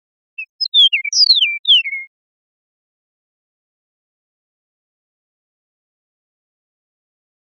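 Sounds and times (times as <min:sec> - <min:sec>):
Eastern meadowlark giving clear slurred whistles in Costa Rica: 0:00.4 - 0:02.1.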